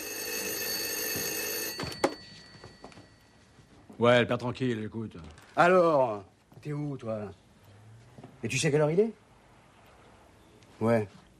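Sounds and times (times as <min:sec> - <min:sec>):
telephone ringing with a high continuous bell tone: 0:00.0 - 0:03.9
speech: 0:04.0 - 0:07.4, 0:08.4 - 0:09.2, 0:10.8 - 0:11.2.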